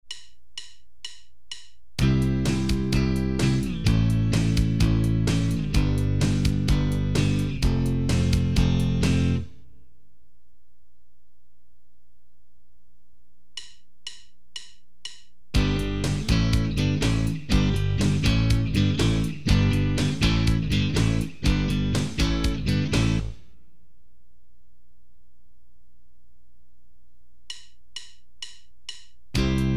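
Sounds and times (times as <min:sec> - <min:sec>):
guitar chord progressions using E-based barre chords: 0:02.0 - 0:09.6, 0:15.6 - 0:23.4, 0:29.4 - 0:29.7.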